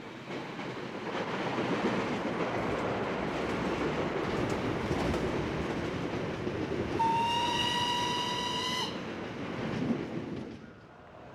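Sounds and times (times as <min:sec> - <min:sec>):
train rolling along the rails in Montana: 0:00.0 - 0:11.3
loud train horn blaring: 0:07.0 - 0:09.0.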